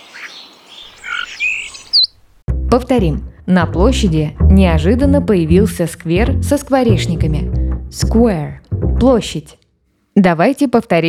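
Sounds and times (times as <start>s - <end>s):
birds chirping: 0.0s - 2.3s
speech: 2.7s - 9.6s, 10.2s - 11.0s.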